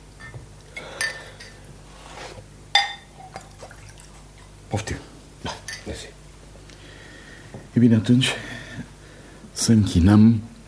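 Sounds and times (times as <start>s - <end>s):
glasses clinking: 0.2s - 1.6s, 2.7s - 3.4s, 5.6s - 5.9s
speech: 4.7s - 5.1s, 7.8s - 8.5s, 9.6s - 10.5s.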